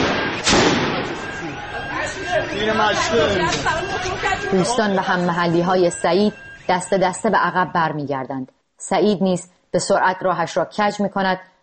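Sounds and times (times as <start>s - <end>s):
gunshot fired at protesters: 0.0s - 1.3s
clamor of a crowd with excited voices: 0.0s - 5.5s
speech: 2.2s - 11.5s.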